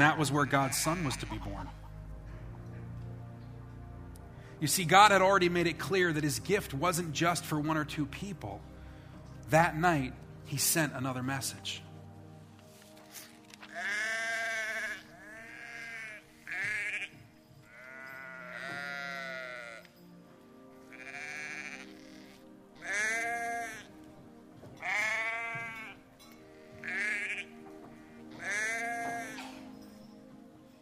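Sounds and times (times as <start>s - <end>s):
speech: 0.0s - 1.8s, 4.6s - 8.7s, 9.5s - 11.8s
sheep bleating in fields at night: 0.4s - 1.7s, 13.6s - 19.9s, 20.9s - 23.9s, 24.8s - 26.0s, 26.6s - 29.6s.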